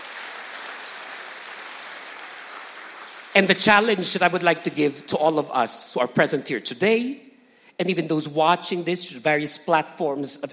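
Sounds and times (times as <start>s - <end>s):
church congregation applauding: 0.0s - 4.4s
speech: 3.4s - 10.5s.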